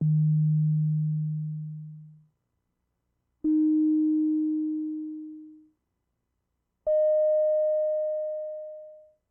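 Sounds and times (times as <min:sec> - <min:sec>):
dry C note sine wave tones: 0:00.0 - 0:02.2, 0:03.4 - 0:05.8, 0:06.9 - 0:09.3.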